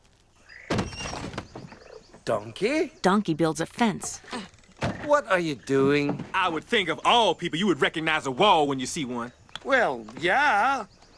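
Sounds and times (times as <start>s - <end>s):
cabin door flung open with a thump: 0.7s - 1.7s, 4.8s - 5.1s
speech: 2.3s - 11.0s.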